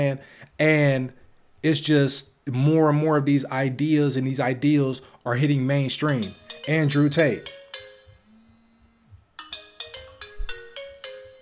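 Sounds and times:
speech: 0.0s - 7.6s
bright electronic phone ringtone: 6.1s - 11.3s
soft low hum: 7.9s - 9.4s.

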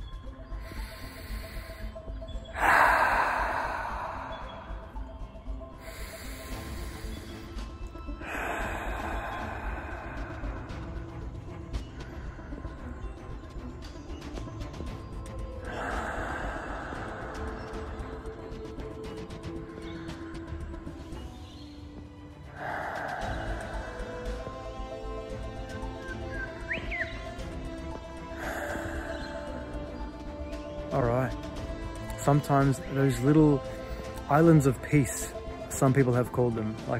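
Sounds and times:
slow calm deep breathing: 0.5s - 14.2s, 14.8s - 21.4s, 22.4s - 26.6s, 27.2s - 30.7s
speech: 32.2s - 36.9s.

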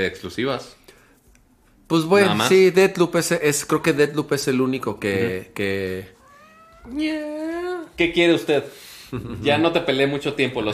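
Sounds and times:
speech: 0.0s - 0.8s, 1.9s - 6.2s, 6.8s - 7.4s, 8.0s - 10.7s
female cat meowing loudly: 6.1s - 7.7s.

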